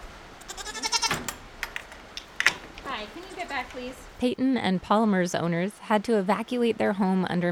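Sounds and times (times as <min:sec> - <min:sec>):
pygmy goat bleating: 0:00.4 - 0:01.3
speech: 0:03.0 - 0:07.5.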